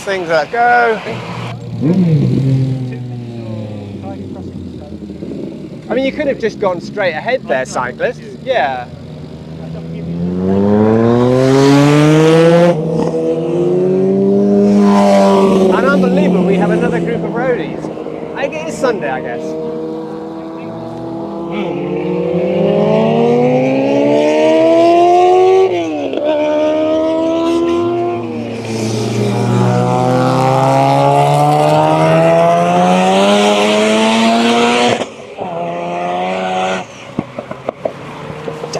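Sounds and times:
speech: 0:00.0 - 0:02.5, 0:05.9 - 0:09.0, 0:18.8 - 0:19.8
Ferrari sports car accelerating hard through its gears: 0:09.7 - 0:38.7.

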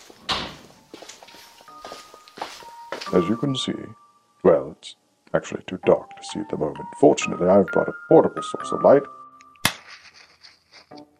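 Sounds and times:
door swinging shut with a sharp thud: 0:00.2 - 0:00.7
speech: 0:03.1 - 0:04.0, 0:04.6 - 0:09.2.

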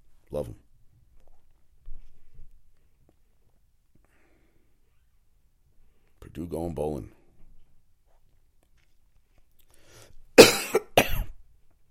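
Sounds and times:
speech: 0:00.3 - 0:00.7, 0:06.4 - 0:07.2
harsh broadband coughs: 0:10.4 - 0:11.4.

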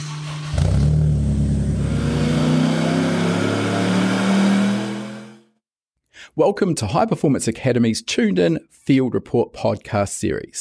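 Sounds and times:
Toyota Starlet circuit race car engine revving: 0:00.0 - 0:05.5
speech: 0:06.4 - 0:10.5.

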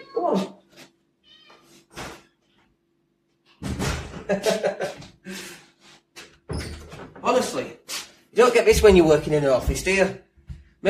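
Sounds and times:
speech: 0:00.2 - 0:00.6, 0:04.3 - 0:04.7, 0:08.4 - 0:10.8
domestic cat meowing: 0:01.2 - 0:01.9
laughter: 0:04.2 - 0:05.1.

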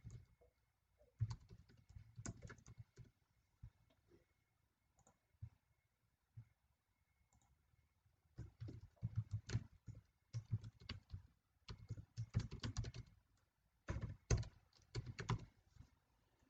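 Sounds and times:
typing numbers on a computer keyboard into a spreadsheet: 0:00.0 - 0:00.3, 0:01.2 - 0:03.2, 0:08.4 - 0:13.2, 0:13.8 - 0:15.6.

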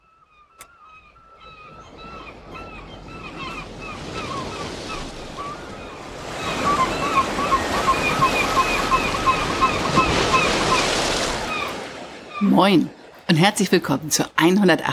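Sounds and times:
faint chirping calls: 0:00.0 - 0:12.9
North Sea waves lapping at the Elpersbüttel bathing spot in Dithmarschen Germany: 0:01.1 - 0:14.9
speech: 0:12.6 - 0:14.9.

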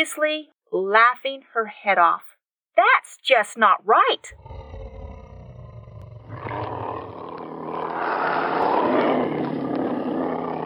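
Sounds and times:
speech: 0:00.0 - 0:04.5
several big cats roaring outdoors: 0:04.3 - 0:10.6.

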